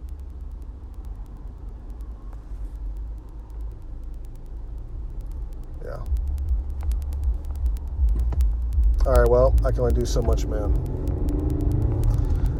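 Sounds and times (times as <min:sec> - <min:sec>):
road rumble inside a moving car in rush-hour traffic: 0:00.0 - 0:12.5
rising tonal sweep: 0:05.5 - 0:12.5
speech: 0:09.1 - 0:11.4.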